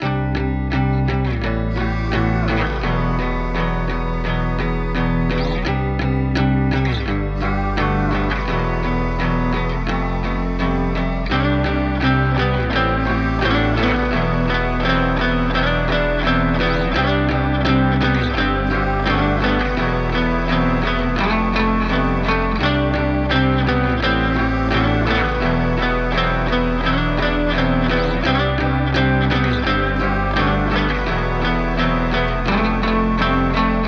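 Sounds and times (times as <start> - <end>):
guitar in C minor at 85 BPM: 0.0 - 33.8.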